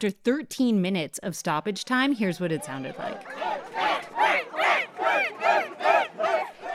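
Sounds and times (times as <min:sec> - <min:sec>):
speech: 0:00.0 - 0:05.8
big crowd of football fans cheering in a stadium: 0:02.3 - 0:06.7.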